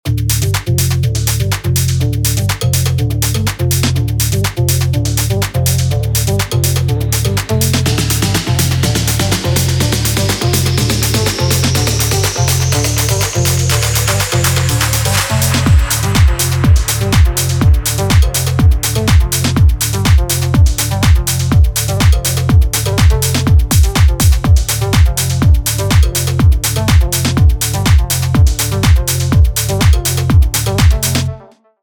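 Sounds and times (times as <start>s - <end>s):
house music one shots: 0.2s - 31.6s.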